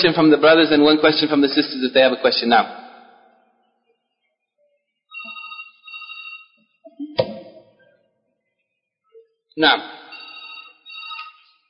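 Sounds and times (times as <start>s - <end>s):
speech: 0.0s - 2.8s, 9.6s - 10.0s
telephone ringing with electronic tone: 5.1s - 6.8s, 10.1s - 11.6s.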